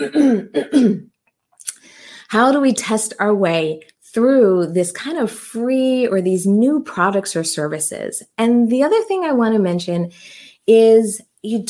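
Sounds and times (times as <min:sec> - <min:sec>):
speech: 0:00.0 - 0:01.0, 0:02.3 - 0:11.6
man clearing his throat: 0:00.0 - 0:01.1
faint breath: 0:01.8 - 0:02.3, 0:10.1 - 0:10.6.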